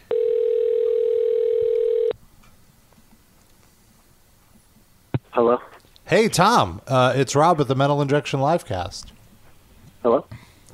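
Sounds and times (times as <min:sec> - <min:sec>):
telephone call ringing out: 0:00.1 - 0:02.1
speech: 0:05.4 - 0:09.2, 0:10.0 - 0:10.4.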